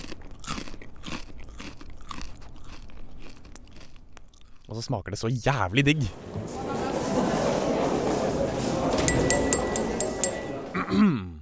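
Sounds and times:
homemade oven-baked crispbread crunching as it is broken and bitten: 0.0 - 4.8
speech: 4.7 - 7.4, 10.9 - 11.2
laughter: 6.1 - 11.2.

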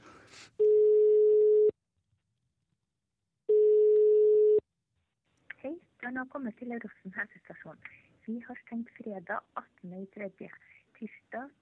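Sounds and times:
telephone ringing tones on a call to the health clinic in Rosten: 0.6 - 1.7, 3.5 - 4.6
speech: 6.1 - 11.6.

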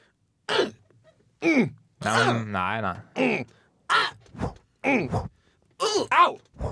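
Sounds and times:
person imitating tennis player grunts on a shot: 1.4 - 2.4, 3.2 - 6.6
speech: 1.4 - 4.1, 4.8 - 6.6.

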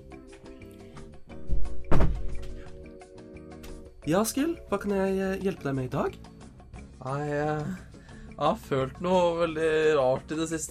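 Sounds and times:
door swinging shut with a solid thunk: 1.5 - 2.5
speech: 4.0 - 6.3, 7.0 - 10.7.

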